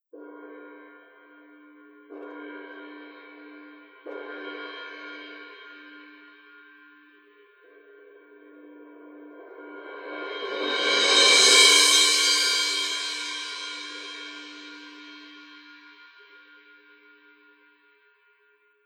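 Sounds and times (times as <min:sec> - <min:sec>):
suspended cymbal: 0:09.3 - 0:16.1.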